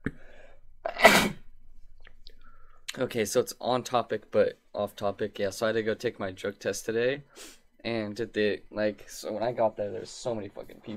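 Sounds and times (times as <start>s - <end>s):
loud sneeze with inhaled gasp: 0.9s - 1.4s
speech: 3.0s - 10.9s.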